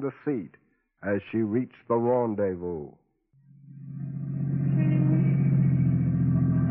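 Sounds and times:
speech: 0.0 - 3.0
car engine idling while parking: 3.7 - 6.6.

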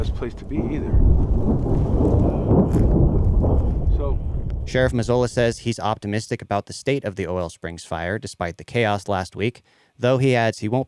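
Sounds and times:
soft wash of rain in a thunderstorm: 0.0 - 4.5
deep sustained rumble of thunder in Rio Blanco County: 0.0 - 5.6
speech: 0.0 - 10.8.

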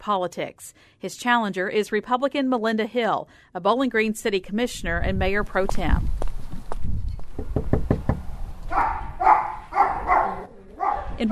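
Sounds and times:
speech: 0.0 - 6.3
sharp knocks on a house door: 7.4 - 8.3
dogs barking: 8.7 - 11.3.

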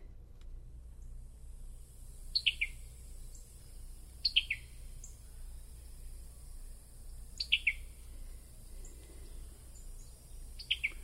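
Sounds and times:
low steady hum: 0.0 - 11.0
summer tanager call notes: 2.3 - 3.5, 4.2 - 5.3, 7.4 - 8.0, 8.8 - 11.0.

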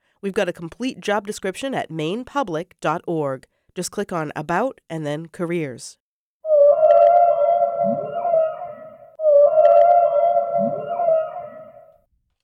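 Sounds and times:
speech: 0.2 - 6.0
whale long loud tonal moan with downward swoop: 6.5 - 11.9.

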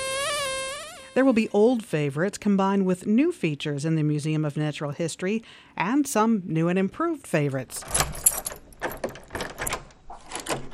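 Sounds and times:
speech: 1.2 - 8.3
tall door being pulled open with clattering rattling: 7.8 - 10.7.

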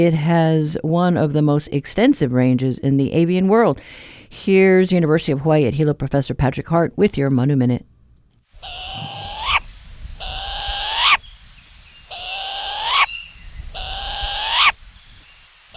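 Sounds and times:
speech: 0.0 - 7.9
Hawaiian short-eared owl raspy calls: 8.6 - 15.7.

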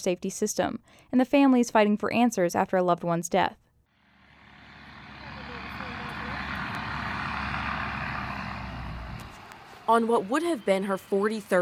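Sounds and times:
speech: 0.0 - 3.6, 9.9 - 11.6
heavy dump truck rolling down a residential street: 4.1 - 11.6.

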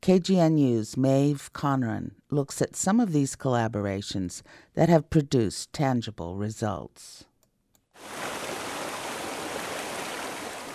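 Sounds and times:
speech: 0.0 - 7.3
river rushing: 8.0 - 10.7.

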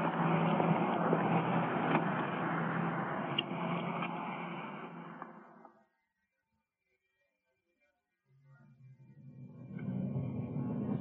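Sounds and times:
police car engine and road rumble: 0.0 - 5.7, 9.0 - 10.9.

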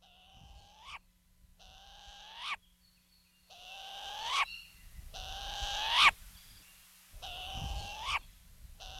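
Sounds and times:
Hawaiian short-eared owl raspy calls: 0.0 - 2.7, 3.5 - 6.2, 7.2 - 8.9.

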